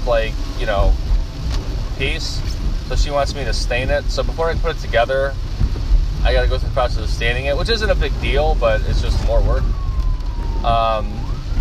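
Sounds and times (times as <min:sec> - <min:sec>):
speech: 0:00.0 - 0:01.1, 0:02.0 - 0:05.5, 0:06.2 - 0:09.8, 0:10.6 - 0:11.2
steady rumble: 0:00.0 - 0:11.6
ambulance siren: 0:07.9 - 0:11.6.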